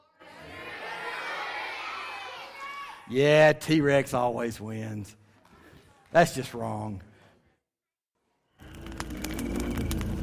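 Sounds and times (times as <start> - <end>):
children's audience yelling: 0.0 - 3.1
speech: 3.1 - 5.2, 6.1 - 7.1.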